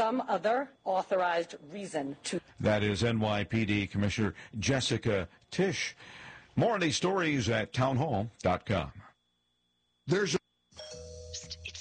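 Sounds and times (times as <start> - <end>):
speech: 0.0 - 9.1, 10.1 - 10.9
doorbell chime: 10.8 - 11.6.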